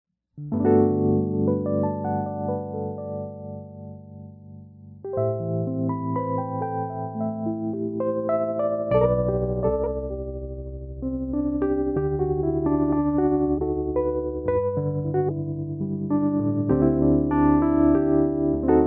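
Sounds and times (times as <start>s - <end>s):
electric piano with lush vibrato: 0.4s - 18.8s.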